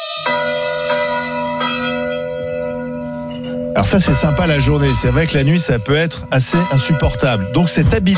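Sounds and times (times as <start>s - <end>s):
church bells pealing from a bell tower: 0.1s - 8.1s
single church bell striking and humming: 0.3s - 5.1s
speech: 3.8s - 8.1s.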